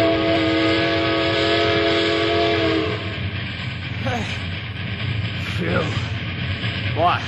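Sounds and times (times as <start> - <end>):
long sustained train horn blast: 0.0 - 3.2
train rumbling on rails: 0.0 - 7.2.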